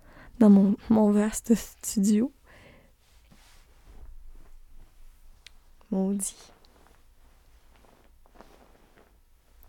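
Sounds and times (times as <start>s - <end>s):
speech: 0.4s - 2.4s, 5.9s - 6.6s
duvet rustling: 0.4s - 9.6s.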